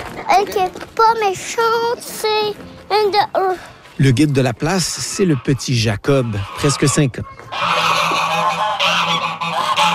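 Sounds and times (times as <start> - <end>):
speech: 0.4 - 8.0
geese honking on a farm: 4.6 - 9.9.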